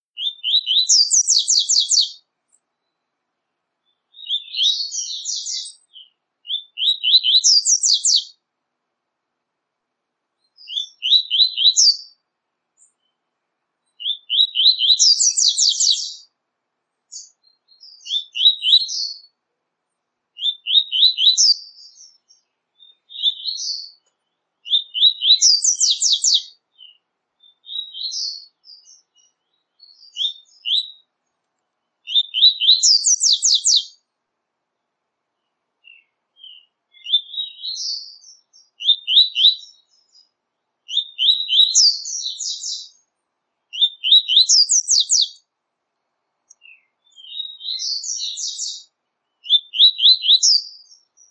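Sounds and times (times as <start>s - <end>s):
coleiro tui tui singing rapidly: 0.2s - 2.2s, 3.8s - 8.4s, 10.4s - 12.2s, 13.9s - 16.3s, 17.1s - 19.3s, 20.4s - 31.1s, 32.0s - 34.0s, 35.8s - 43.0s, 43.7s - 45.4s, 46.5s - 51.3s.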